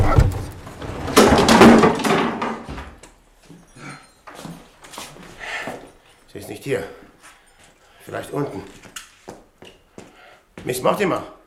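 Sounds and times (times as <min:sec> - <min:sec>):
heavy bolted and barricaded door forced open with a crash: 0:00.0 - 0:03.0
wooden knocks and scrapes of a barricaded door giving way: 0:00.0 - 0:03.0
speech: 0:06.6 - 0:07.0, 0:08.1 - 0:08.9, 0:10.6 - 0:11.4.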